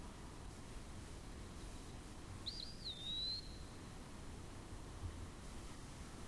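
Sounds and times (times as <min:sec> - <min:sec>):
low-pitched hiss: 0:00.0 - 0:06.2
eastern wood-pewee whistling: 0:02.4 - 0:03.7.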